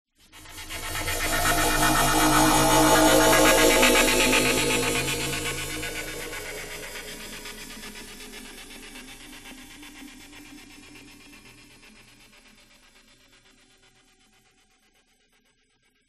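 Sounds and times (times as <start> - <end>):
FM metallic stutter sound design swell: 0.2 - 8.2.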